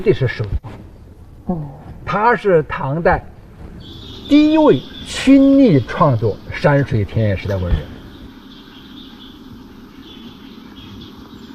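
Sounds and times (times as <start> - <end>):
speech: 0.0 - 0.8, 1.5 - 8.0
steady low rumble: 0.0 - 11.5
birds chirping and singing: 2.8 - 11.5.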